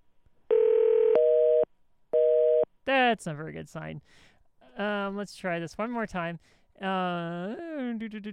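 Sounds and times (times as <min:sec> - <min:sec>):
electronic telephone dial tone while placing a call: 0:00.5 - 0:02.6
speech: 0:03.2 - 0:08.3.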